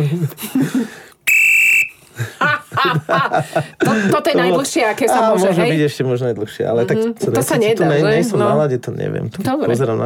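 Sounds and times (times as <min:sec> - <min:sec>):
speech: 0:00.0 - 0:01.0, 0:03.0 - 0:10.0
referee's whistle blown for offside: 0:01.3 - 0:02.0
people laughing: 0:02.2 - 0:04.2.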